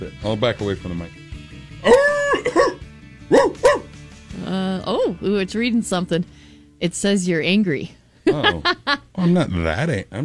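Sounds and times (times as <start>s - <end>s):
speech: 0.0s - 1.2s, 4.5s - 10.2s
person imitating a dog barking: 1.8s - 3.9s
laughter: 8.3s - 9.4s.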